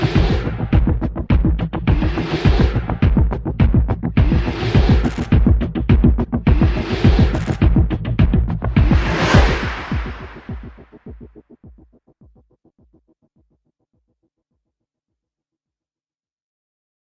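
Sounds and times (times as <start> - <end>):
pulsing rhythm: 0.2 - 12.4.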